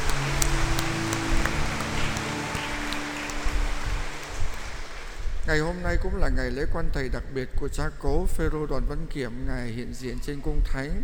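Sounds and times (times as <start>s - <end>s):
large audience clapping at a patron saint feast: 0.0s - 5.4s
speech: 5.5s - 11.0s.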